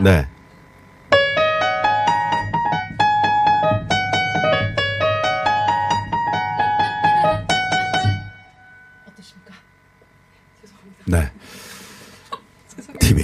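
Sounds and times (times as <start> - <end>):
speech: 0.0 - 0.3
piano keys pounded with fists in clustered chords: 1.2 - 8.5.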